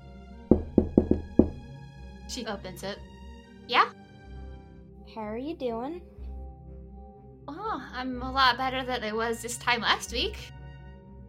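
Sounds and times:
firm knocking on a wooden door: 0:00.5 - 0:01.8
speech: 0:02.3 - 0:03.1, 0:03.7 - 0:04.0, 0:05.2 - 0:06.1, 0:07.7 - 0:10.6.

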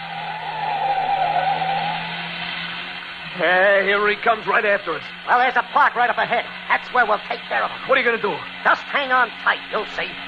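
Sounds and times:
car engine hum: 0:00.0 - 0:10.2
car tires skidding in a sustained screech: 0:00.0 - 0:10.2
speech: 0:03.4 - 0:10.2.

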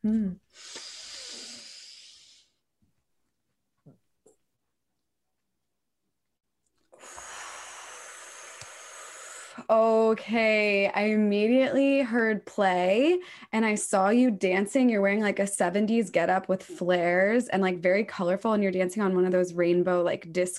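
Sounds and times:
speech: 0:00.0 - 0:00.8, 0:09.7 - 0:20.5
deep breath drawn in with a long airy rush: 0:00.5 - 0:02.6, 0:06.9 - 0:09.6.

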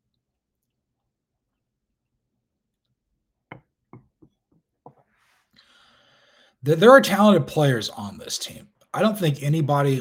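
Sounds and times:
mug being handled with soft knocks: 0:03.5 - 0:05.0
speech: 0:06.6 - 0:10.0.

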